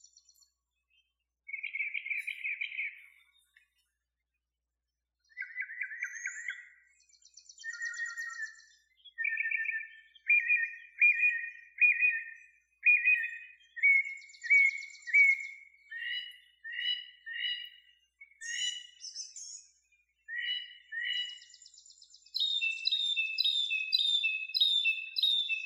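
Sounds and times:
northern mockingbird singing: 0.0s - 4.0s, 5.2s - 25.6s.

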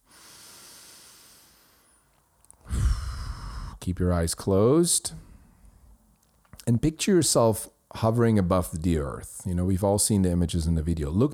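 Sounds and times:
deep breath: 0.0s - 3.8s
speech: 3.9s - 5.3s, 6.6s - 11.3s.

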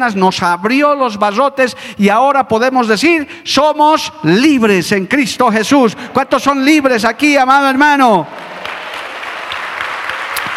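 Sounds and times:
speech: 0.0s - 8.5s
audience applauding: 8.3s - 10.5s.

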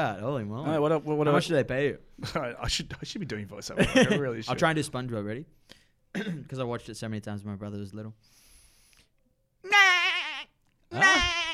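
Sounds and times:
speech: 0.0s - 8.4s, 10.9s - 11.4s
person bleating like a sheep in a cartoon-character voice impression: 9.6s - 11.5s.

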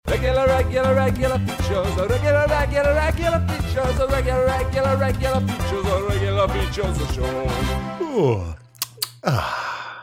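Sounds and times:
speech: 0.7s - 8.6s, 9.2s - 9.6s
sharp clicks: 8.8s - 9.4s
exaggerated theatrical groaning yawn: 8.8s - 9.8s.

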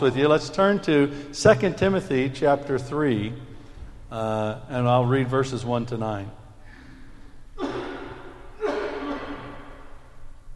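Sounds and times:
speech: 0.0s - 3.5s, 4.1s - 6.4s
coughs into an elbow: 7.6s - 9.9s.

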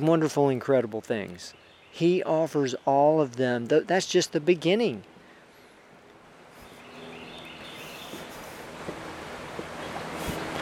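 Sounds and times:
speech: 0.0s - 5.1s
steady rushing of flowing river water: 6.2s - 10.6s.

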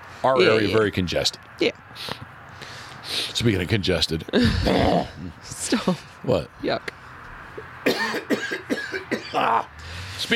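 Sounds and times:
speech: 0.2s - 2.3s, 3.1s - 7.0s, 9.3s - 10.3s
person coughing harshly: 7.9s - 9.6s.

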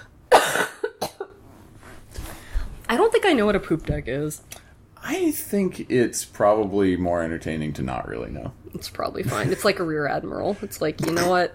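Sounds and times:
person coughing: 0.3s - 1.3s
speech: 3.3s - 11.5s.

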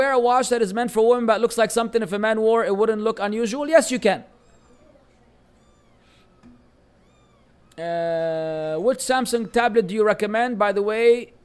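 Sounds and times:
speech: 0.0s - 4.3s, 7.8s - 11.4s
low hum: 0.0s - 11.4s
cat meowing: 4.4s - 7.8s.

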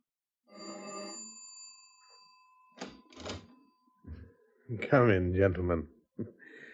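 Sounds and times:
doorbell of a third-floor apartment in Haven Mews London buzzing: 0.5s - 4.0s
speech: 4.7s - 6.4s.

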